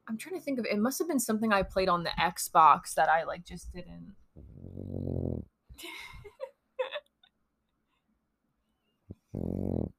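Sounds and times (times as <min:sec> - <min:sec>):
speech: 0:00.1 - 0:04.2, 0:05.8 - 0:06.2
napping dog snoring: 0:04.4 - 0:05.5, 0:09.1 - 0:09.9
napping dog snuffling and snorting: 0:09.3 - 0:09.9.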